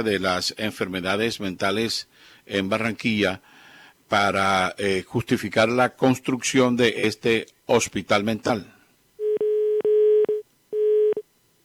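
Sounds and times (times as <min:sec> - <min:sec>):
speech: 0:00.0 - 0:03.5, 0:04.1 - 0:08.8
telephone line tone after a dropped call: 0:09.2 - 0:11.6.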